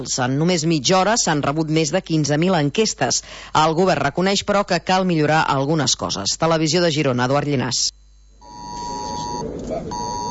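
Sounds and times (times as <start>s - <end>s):
speech: 0.0s - 8.0s
constant noise: 0.0s - 10.3s
emergency alert tone on mobile phones and smartwatches during an alert test: 8.0s - 10.3s.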